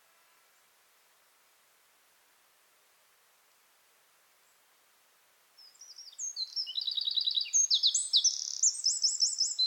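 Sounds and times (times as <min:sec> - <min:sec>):
Eurasian wren Troglodytes troglodytes song of trills and sharp notes: 0:05.6 - 0:09.6.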